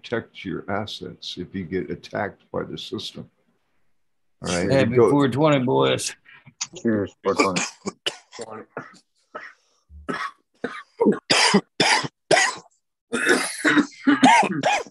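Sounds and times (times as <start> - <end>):
speech: 0.0 - 3.4, 4.4 - 9.0, 10.1 - 11.7
people coughing and clearing throats: 7.3 - 14.9.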